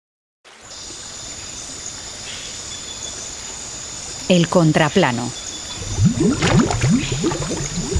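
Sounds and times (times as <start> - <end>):
speech: 4.3 - 7.9
bubbles rising and popping at a river's surface: 5.7 - 7.9.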